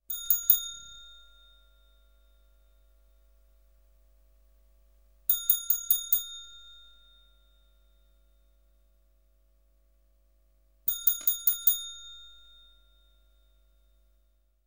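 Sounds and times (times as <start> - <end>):
hotel bell: 0.1 - 3.1, 5.3 - 8.6, 10.9 - 14.3.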